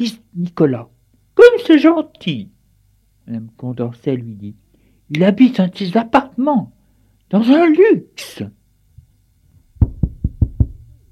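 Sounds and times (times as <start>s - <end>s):
speech: 0.0s - 0.9s, 1.6s - 2.5s, 3.3s - 8.6s
knocking on a wooden door: 9.8s - 11.0s.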